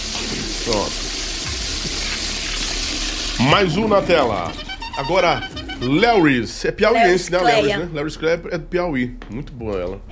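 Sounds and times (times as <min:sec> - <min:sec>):
toilet flushing: 0:00.0 - 0:07.5
speech: 0:00.6 - 0:01.1, 0:03.4 - 0:10.1.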